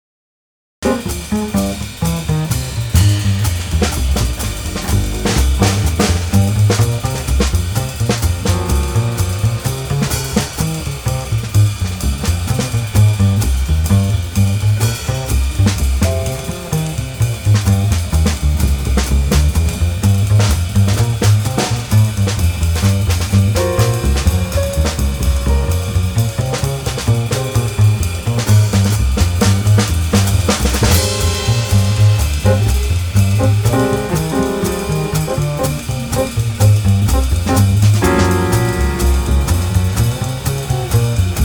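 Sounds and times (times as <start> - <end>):
upbeat chill jazz piano trio: 0.8 - 41.4.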